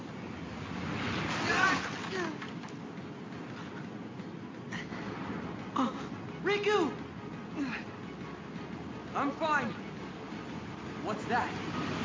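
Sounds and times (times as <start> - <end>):
wind gusts: 0.0 - 12.0
rough ocean waves crashing: 0.1 - 2.7, 11.0 - 12.0.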